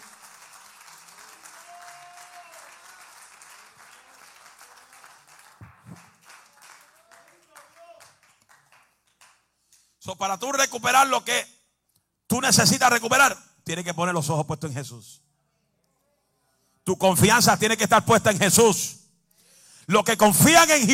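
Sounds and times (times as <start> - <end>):
audience applauding loudly: 0.0 - 9.5
speech: 10.0 - 11.5, 12.3 - 15.2, 16.8 - 19.0, 19.9 - 20.9.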